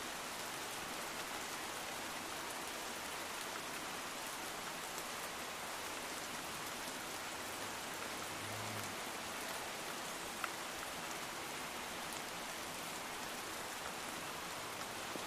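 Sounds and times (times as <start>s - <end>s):
steady dense evening rain: 0.0s - 15.2s.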